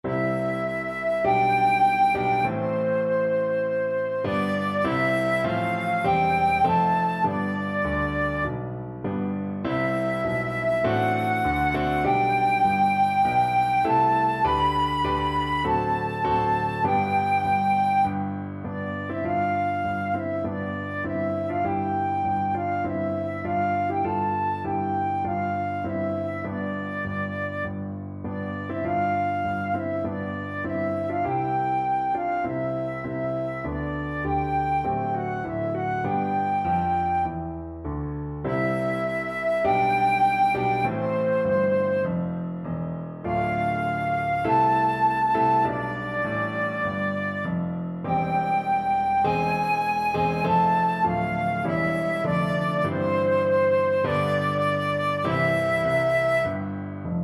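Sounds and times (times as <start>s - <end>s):
flute playing a national anthem: 0.0s - 37.7s, 38.5s - 42.3s, 43.2s - 57.2s.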